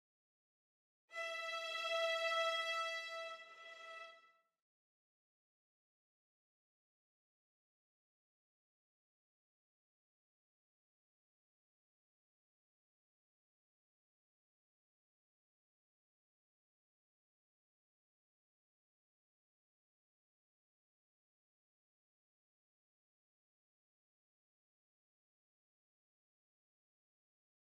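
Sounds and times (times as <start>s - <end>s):
violins: 1.1s - 4.2s.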